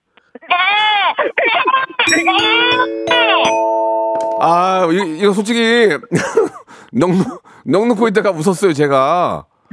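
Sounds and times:
hungry newborn goat kid bleating for its mother: 0.3s - 1.9s
laughter: 1.1s - 2.6s, 5.9s - 6.7s
speech: 1.2s - 3.5s, 4.4s - 9.7s.

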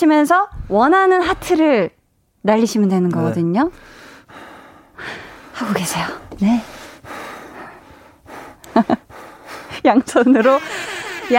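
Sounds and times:
speech: 0.0s - 4.4s, 5.0s - 7.2s, 8.8s - 9.0s, 9.8s - 11.3s
heavy breathing through a thick winter mask: 3.8s - 5.6s, 6.6s - 9.8s
laughter: 8.6s - 9.1s, 9.9s - 11.3s.

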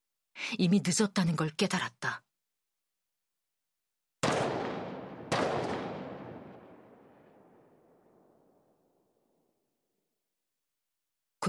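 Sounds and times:
speech: 0.4s - 2.3s
sharp gunshots with long echo: 4.2s - 7.6s.

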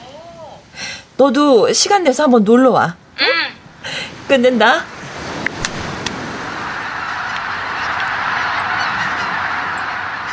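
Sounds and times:
speech: 1.2s - 3.4s, 4.3s - 4.9s
flock of migratory winter geese honking over a wetland beside the sea: 6.4s - 10.3s.

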